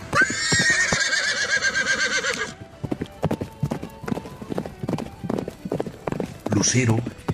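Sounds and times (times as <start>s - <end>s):
horse rearing with loud shrill whinny: 0.0s - 2.6s
horse hoofbeats clip-clopping: 0.0s - 7.3s.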